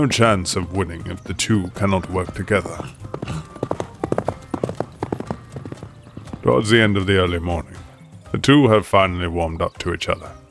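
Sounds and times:
speech: 0.0 - 3.6, 6.5 - 10.4
horse hooves clip-clopping while riding: 0.9 - 7.9.

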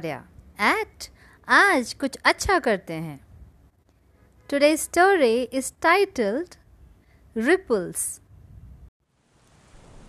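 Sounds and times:
speech: 0.0 - 3.2, 4.5 - 6.6, 7.4 - 8.2
steady dense rain: 9.1 - 10.0
deep rumble of thunder: 9.5 - 10.0.

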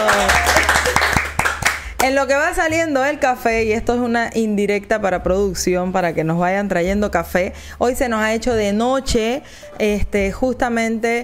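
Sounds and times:
applause from a small group: 0.0 - 2.2
speech: 2.0 - 11.2.

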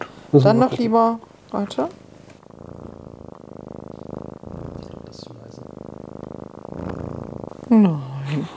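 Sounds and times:
cat purring: 0.2 - 8.5
speech: 0.3 - 2.0, 7.7 - 8.4
faint breathy murmurs: 2.4 - 8.5.

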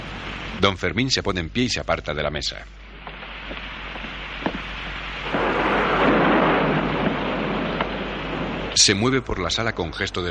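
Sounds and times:
thunder rumbling in a thunderstorm: 0.0 - 0.8, 2.9 - 10.2
rain hissing in a thunderstorm: 0.0 - 10.2
speech: 0.6 - 2.8, 8.8 - 10.2.

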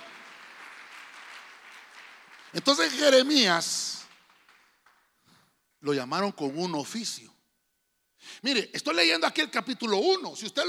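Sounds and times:
audience applauding: 0.0 - 5.2
speech: 2.5 - 4.0, 5.8 - 7.4, 8.3 - 10.6.

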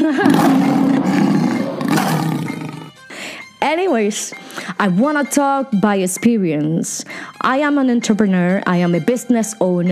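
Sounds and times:
speech: 0.0 - 0.6, 3.6 - 9.9
loud growling roar: 0.2 - 3.0.

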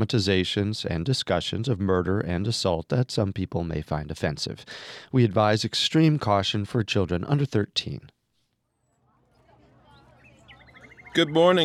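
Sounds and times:
speech: 0.0 - 8.1, 11.2 - 11.6
small female caged bird chirping in Beijing: 8.7 - 11.6.

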